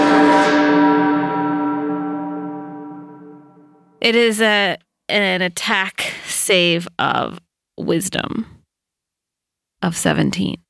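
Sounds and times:
church bell strike: 0.0s - 3.7s
speech: 4.0s - 8.6s, 9.8s - 10.6s.

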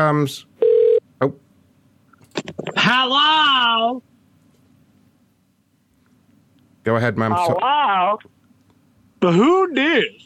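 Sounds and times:
speech: 0.0s - 0.5s, 1.2s - 1.4s, 2.4s - 4.1s, 6.8s - 8.4s, 9.2s - 10.2s
outgoing phone call electronic ringing tone: 0.6s - 1.0s.

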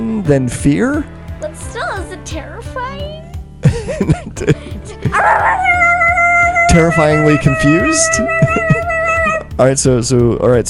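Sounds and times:
speech: 0.3s - 1.7s, 4.0s - 5.9s, 6.7s - 8.8s, 9.6s - 10.6s
laughter: 3.6s - 9.5s
dog barking: 5.1s - 9.5s.

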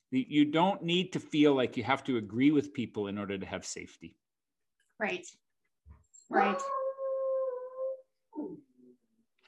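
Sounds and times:
speech: 0.1s - 4.2s, 5.0s - 5.4s, 6.3s - 6.8s
dog howling: 6.3s - 8.1s.

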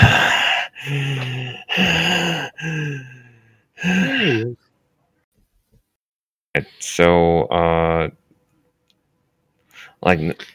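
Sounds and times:
voice acting heavy shaky breathing like sobbing gasps: 0.0s - 4.6s
speech: 6.6s - 8.2s, 10.0s - 10.5s.

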